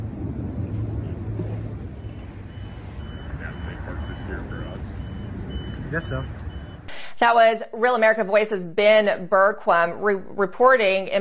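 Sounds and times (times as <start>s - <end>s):
box delivery truck engine rumble outdoors: 0.0s - 6.9s
short high beeps: 2.0s - 6.9s
indistinct voices murmuring: 3.2s - 6.4s
speech: 5.9s - 6.4s, 7.2s - 11.1s.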